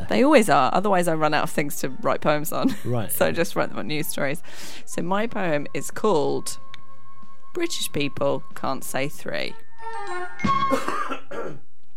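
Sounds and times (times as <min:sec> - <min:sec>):
speech: 0:00.1 - 0:06.7, 0:07.6 - 0:11.6
massive cough with throat clearing: 0:02.8 - 0:03.1, 0:10.7 - 0:11.7.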